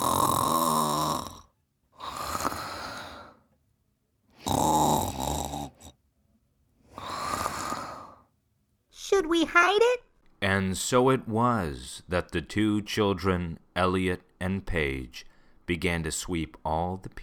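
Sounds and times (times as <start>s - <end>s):
loud rasping snoring: 0.0s - 3.4s, 4.4s - 6.0s, 6.9s - 8.2s
speech: 9.2s - 17.2s.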